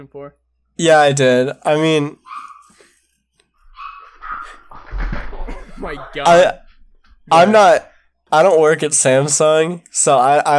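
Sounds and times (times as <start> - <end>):
speech: 0.0 - 2.2, 5.8 - 6.6, 7.3 - 10.5
dog barking and yelping: 2.2 - 2.8, 3.6 - 5.0
laughter: 4.4 - 6.6.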